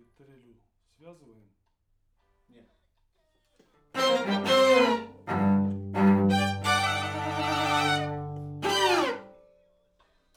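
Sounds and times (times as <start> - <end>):
main strings: 4.0 - 9.3.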